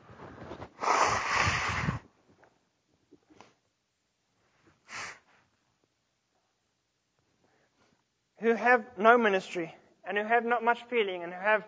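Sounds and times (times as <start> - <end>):
person blowing their nose: 0.2 - 2.1, 4.8 - 5.4
person sniffing: 0.6 - 2.1, 4.7 - 5.4
speech: 8.4 - 11.6.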